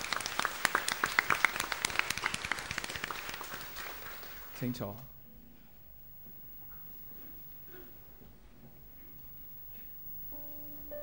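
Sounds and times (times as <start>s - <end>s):
audience applauding: 0.0s - 5.0s
speech: 4.6s - 5.1s.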